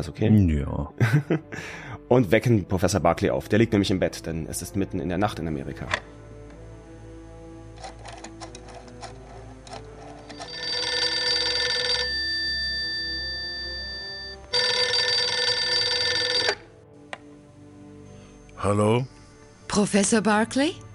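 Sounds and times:
speech: 0.0s - 6.2s, 18.6s - 20.9s
laughter: 1.0s - 1.7s
telephone ringing on a call from Germany to America: 10.2s - 16.7s.

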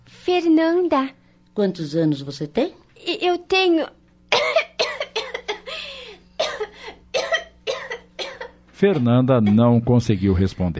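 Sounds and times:
speech: 0.3s - 4.6s, 8.8s - 10.7s
violent coughing fit: 4.3s - 10.4s
wheezy gasps: 5.6s - 7.0s.

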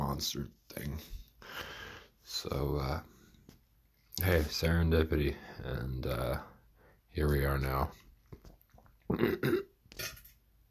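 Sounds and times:
speech: 0.2s - 1.7s, 2.3s - 3.1s, 4.2s - 6.5s, 7.2s - 8.4s, 9.1s - 10.2s
raspy fart: 9.1s - 10.3s.

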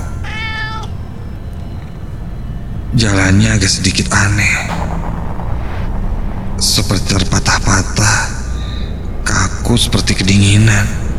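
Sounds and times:
cat meowing: 0.2s - 0.9s
steady low rumbling noise: 0.4s - 9.4s
speech: 3.0s - 5.2s, 6.6s - 8.4s, 9.7s - 11.0s.

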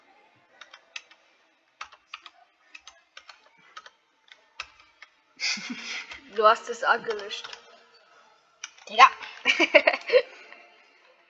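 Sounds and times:
typing on a French layout computer keyboard: 0.6s - 1.2s, 1.8s - 5.1s
laughter: 5.4s - 6.2s, 9.5s - 10.6s
speech: 5.6s - 7.6s, 8.9s - 10.3s.

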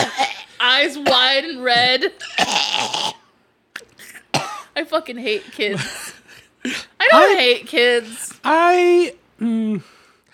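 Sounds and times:
speech: 0.8s - 3.2s, 4.8s - 10.0s
harsh cough from eating spicy food: 2.2s - 3.2s, 4.0s - 4.7s.

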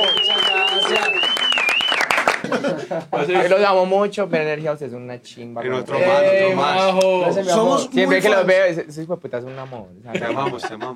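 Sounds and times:
sustained high whistle-like tone: 0.0s - 2.1s
lively applause: 0.0s - 2.6s
laughter: 2.2s - 3.6s, 10.1s - 10.9s
speech: 2.9s - 10.9s.

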